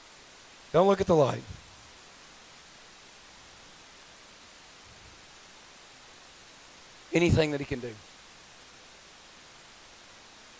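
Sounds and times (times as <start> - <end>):
television-style static hiss: 0.0 - 10.5
speech: 0.7 - 1.6, 7.1 - 8.1.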